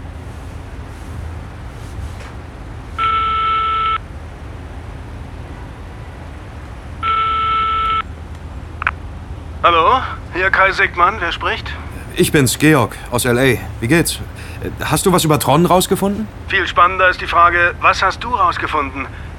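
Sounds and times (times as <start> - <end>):
telephone tone bursts as a call is placed from a hotel room: 3.0 - 4.0, 7.1 - 8.1
speech: 9.7 - 19.3.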